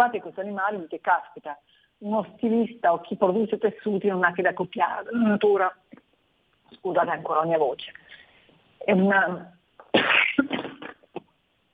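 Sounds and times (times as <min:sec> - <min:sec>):
speech: 0:00.0 - 0:06.0, 0:06.7 - 0:08.2, 0:08.8 - 0:10.8
loud sneeze: 0:09.9 - 0:11.0.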